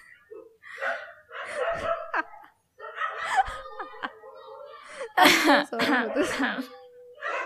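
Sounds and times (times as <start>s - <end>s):
dog barking in excited yelping bursts: 0.3s - 3.4s, 7.2s - 7.4s
laughter: 1.5s - 6.8s
speech: 5.2s - 6.8s.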